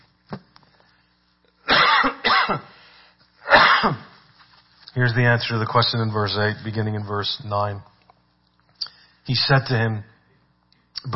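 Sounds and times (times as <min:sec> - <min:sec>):
person coughing: 0:01.6 - 0:02.8, 0:03.4 - 0:04.2
throat clearing: 0:01.7 - 0:02.7, 0:03.5 - 0:04.1
speech: 0:05.0 - 0:07.9, 0:09.3 - 0:10.1.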